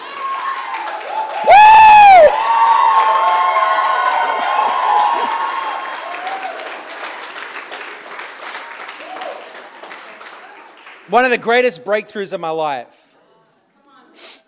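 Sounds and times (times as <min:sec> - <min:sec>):
scattered clapping: 0:00.0 - 0:01.6, 0:02.2 - 0:11.5
large crowd cheering and shouting: 0:00.0 - 0:06.9
loud rising whoop: 0:00.1 - 0:06.6
speech: 0:11.1 - 0:13.0.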